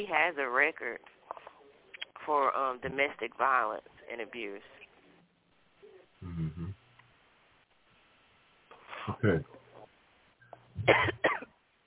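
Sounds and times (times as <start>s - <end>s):
speech: 0.0s - 1.2s, 2.3s - 4.8s, 9.0s - 9.5s, 10.8s - 11.4s
breath and throat sound: 6.2s - 6.8s
person coughing: 10.8s - 11.5s.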